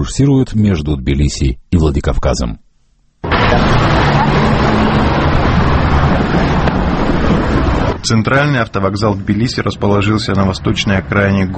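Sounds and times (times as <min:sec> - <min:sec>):
speech: 0:00.0 - 0:02.6, 0:08.0 - 0:11.5
street traffic of buses and minibuses roaring: 0:03.2 - 0:11.5.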